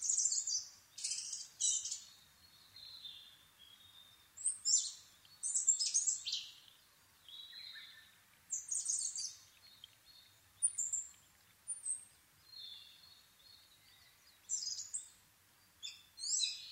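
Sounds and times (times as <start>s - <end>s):
Asian brown flycatcher Muscicapa dauurica song at Nikko Japan: 0.0s - 16.7s.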